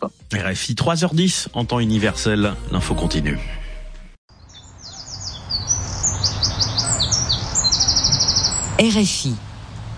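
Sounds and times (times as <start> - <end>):
speech: 0.0 - 3.6, 8.8 - 9.9
rapid repeated bird trill: 4.3 - 8.8
birds chirping: 4.3 - 9.4.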